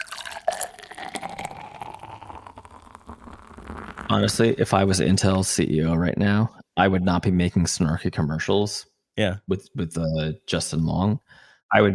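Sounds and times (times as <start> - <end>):
liquid pouring: 0.0 - 4.6
speech: 4.1 - 11.9.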